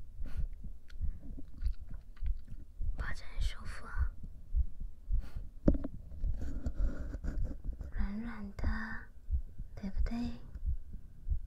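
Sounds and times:
heartbeat thumping: 0.0 - 11.4
faint soft clicks and rustles: 0.6 - 2.7, 5.6 - 8.0.

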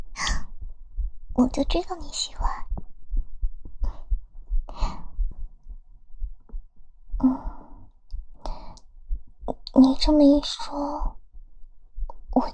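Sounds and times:
girl's heartbeat: 0.0 - 12.5
speech: 1.4 - 2.6, 9.8 - 11.2
soft breathy sighs: 3.8 - 5.2, 7.2 - 8.9.

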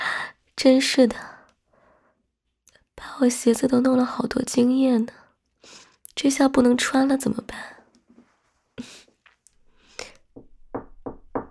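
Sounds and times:
speech: 0.6 - 1.3, 3.2 - 7.8
knocking on a door: 10.4 - 11.4.

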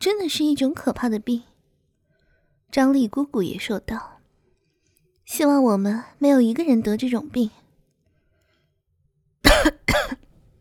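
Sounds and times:
speech: 0.0 - 1.5, 2.7 - 4.1, 5.3 - 7.6
faint trailing breath: 2.0 - 2.7, 8.0 - 8.8
man coughing: 9.5 - 10.2.

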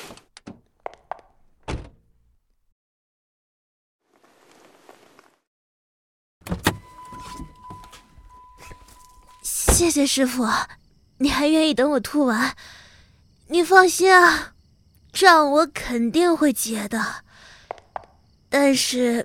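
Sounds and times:
car door swinging open: 1.6 - 2.0, 6.4 - 10.0
car door unlocking clicks: 6.4 - 9.8
steady electronic chime: 6.8 - 9.5
soft rustle: 6.9 - 9.5
speech: 9.8 - 12.8, 13.5 - 14.5, 15.1 - 17.2, 18.5 - 19.2.

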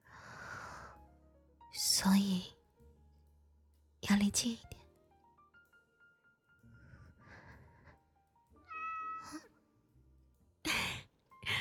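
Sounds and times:
soft breathy sounds: 0.0 - 1.1, 6.6 - 8.2, 10.7 - 11.5
speech: 1.8 - 2.5, 4.2 - 4.8
cat meowing: 8.6 - 9.5.

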